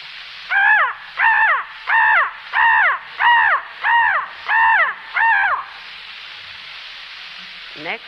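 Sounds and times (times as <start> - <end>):
human voice imitating crow caws: 0.5 - 5.7
speech: 7.9 - 8.0.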